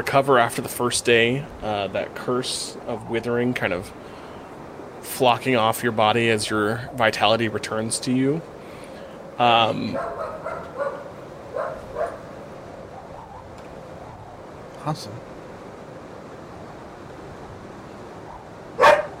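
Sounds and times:
speech: 0:00.0 - 0:04.2, 0:05.0 - 0:08.6, 0:09.4 - 0:10.3, 0:14.8 - 0:15.3
steady hum: 0:00.0 - 0:19.1
dog barking: 0:09.9 - 0:12.3, 0:18.3 - 0:19.1.

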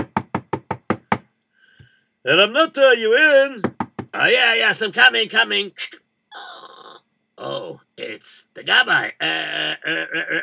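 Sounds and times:
sharp knocks on a door: 0:00.0 - 0:01.3, 0:03.6 - 0:04.2
speech: 0:02.2 - 0:06.0, 0:08.7 - 0:10.4.

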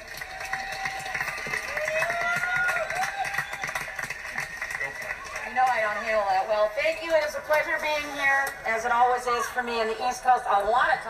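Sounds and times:
crowd in New England clapping: 0:00.0 - 0:07.3
whistles: 0:02.7 - 0:03.8
speech: 0:06.6 - 0:11.0.

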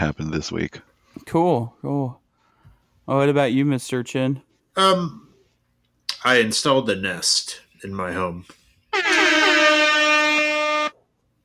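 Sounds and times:
speech: 0:00.0 - 0:02.2, 0:03.1 - 0:05.2, 0:06.2 - 0:09.3
air horn blast: 0:08.9 - 0:11.0.

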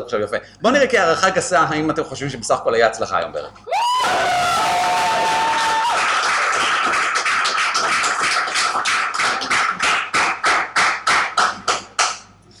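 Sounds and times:
speech: 0:00.0 - 0:04.6
audience cheering: 0:03.7 - 0:07.4
audience applause at an evening event: 0:03.7 - 0:12.2
slower rhythmic claps in unison: 0:05.1 - 0:12.4.

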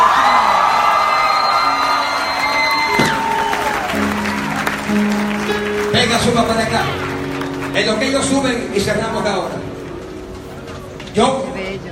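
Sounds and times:
whoops and high shouts over the crowd: 0:00.0 - 0:04.0
audience cheering as a shout of victory: 0:00.0 - 0:05.8
audience applause: 0:00.0 - 0:08.9
speech: 0:06.3 - 0:07.0, 0:07.8 - 0:09.7, 0:11.2 - 0:11.4.

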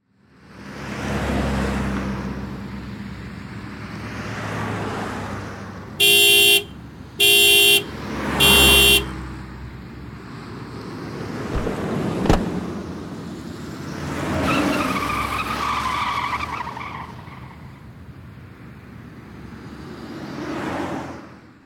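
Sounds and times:
low rumble of passing road traffic: 0:00.1 - 0:21.6
car horn honks: 0:06.0 - 0:09.2.

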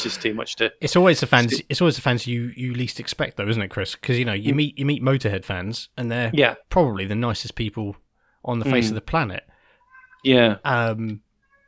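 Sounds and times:
speech: 0:00.0 - 0:09.5, 0:10.2 - 0:11.2
cat meowing: 0:09.8 - 0:10.4, 0:11.4 - 0:11.6.

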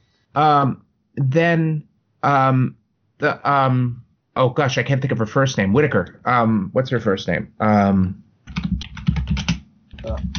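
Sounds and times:
speech: 0:00.4 - 0:09.4, 0:10.0 - 0:10.3
rapid typing on a computer keyboard: 0:08.5 - 0:10.3.

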